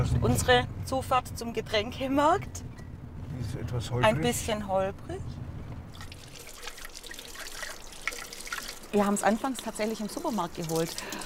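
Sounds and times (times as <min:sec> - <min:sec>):
speech: 0:00.0 - 0:02.7, 0:03.3 - 0:05.4, 0:08.9 - 0:11.2
small bright drips of spring water: 0:05.9 - 0:11.2
water trickling from a forest spring: 0:05.9 - 0:11.2.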